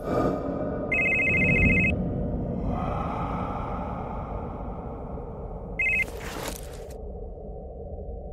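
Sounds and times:
low steady rumbling background: 0.0 - 8.3
cellphone ringing with a bright electronic trill: 0.9 - 1.9, 5.8 - 6.2.

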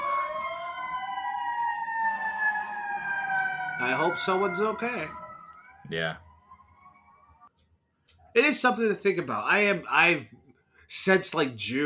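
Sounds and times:
low rumbling background of traffic: 0.0 - 7.4
emergency vehicle siren wailing outside a window: 0.0 - 7.5
speech: 3.8 - 5.2, 5.9 - 6.2, 8.4 - 11.8.

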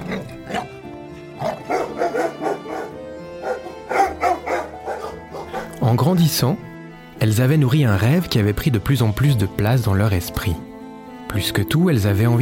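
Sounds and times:
speech: 0.1 - 0.7, 6.0 - 10.7, 11.3 - 12.4
dog barking with higher yips: 1.4 - 5.8.

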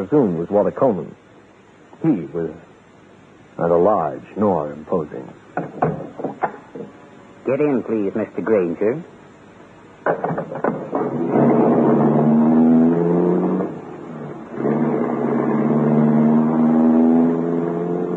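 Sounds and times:
speech: 0.0 - 1.2, 2.0 - 2.7, 3.6 - 5.9, 7.4 - 9.2, 10.0 - 10.6
large limousine driving away: 10.6 - 18.1.

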